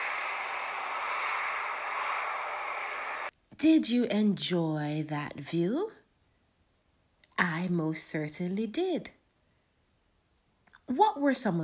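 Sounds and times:
airplane engines roaring during takeoff: 0.0s - 3.3s
speech: 3.6s - 6.0s, 7.6s - 9.2s, 10.9s - 11.6s.

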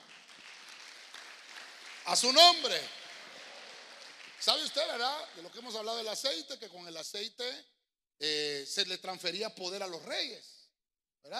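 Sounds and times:
audience clapping: 0.0s - 6.4s
speech: 2.1s - 3.0s, 4.4s - 10.5s.

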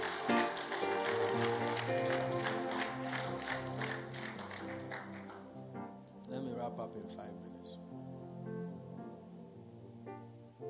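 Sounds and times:
audience clapping: 0.0s - 5.6s
steady musical tones: 0.0s - 10.5s.

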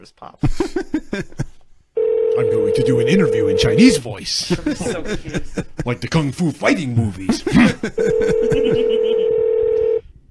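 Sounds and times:
speech: 0.0s - 1.5s, 2.4s - 9.4s
laughter: 0.4s - 1.6s, 4.4s - 6.1s, 7.2s - 9.4s
electronic telephone keypad tone: 2.0s - 4.0s, 8.2s - 10.0s.

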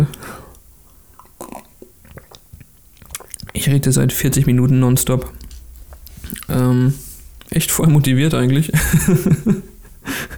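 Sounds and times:
small mouth clicks: 0.0s - 7.9s
sipping a drink: 0.0s - 10.3s
speech: 3.6s - 5.4s, 6.7s - 7.0s, 7.6s - 9.7s
laughter: 8.4s - 10.3s.

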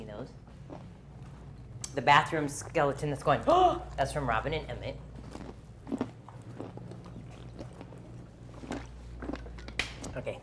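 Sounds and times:
speech: 2.0s - 5.1s
crunchy chewing of food: 5.1s - 10.2s.

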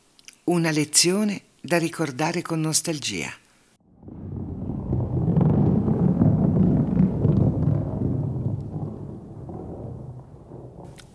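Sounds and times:
speech: 0.5s - 3.4s
deep rolling rumble of thunder: 3.8s - 11.1s.

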